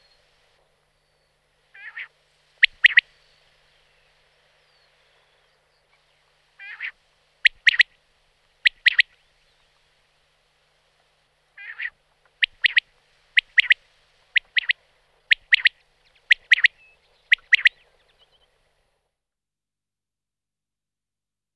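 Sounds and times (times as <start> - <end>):
Common quail Coturnix coturnix calling: 1.8 - 3.1, 6.6 - 8.0, 8.6 - 9.2, 11.6 - 17.9.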